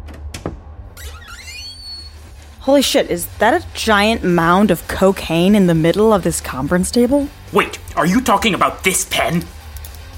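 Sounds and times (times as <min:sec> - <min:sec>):
door creaking as it swings open: 0:00.0 - 0:02.4
speech: 0:02.6 - 0:09.6.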